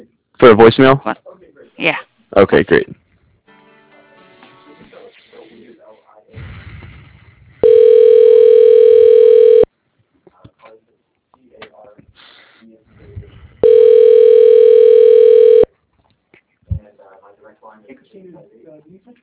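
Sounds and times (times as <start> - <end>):
speech: 0.0 - 3.0, 17.8 - 19.2
telephone ringback tone during call transfer to an extension: 7.6 - 9.7, 13.6 - 15.7.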